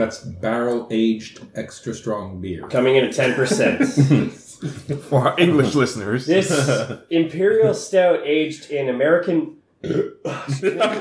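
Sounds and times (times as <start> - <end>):
speech: 0.0 - 11.0
laughter: 2.8 - 7.8, 10.3 - 11.0
loud throaty burp: 9.8 - 10.5.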